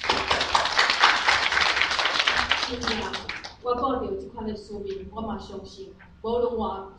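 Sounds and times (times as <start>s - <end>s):
crowd at a Christian gathering in Changhua applauding: 0.0s - 3.6s
speech: 2.7s - 6.9s.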